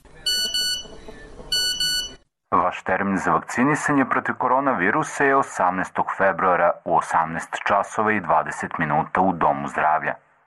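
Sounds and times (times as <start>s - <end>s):
phone text-message notification beeps: 0.3s - 2.2s
speech: 2.7s - 10.2s.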